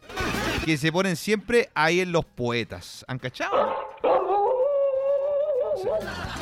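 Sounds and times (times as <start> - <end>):
speech: 0.7 - 4.4, 5.8 - 6.4
dog howling: 3.6 - 6.0
laughter: 5.5 - 6.4.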